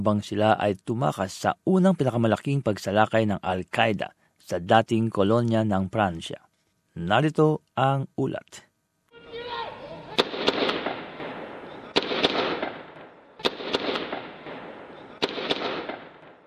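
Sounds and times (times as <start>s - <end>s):
speech: 0.0s - 8.7s
sharp gunshots: 10.1s - 16.4s
explosions during a hotel assault: 10.2s - 16.4s.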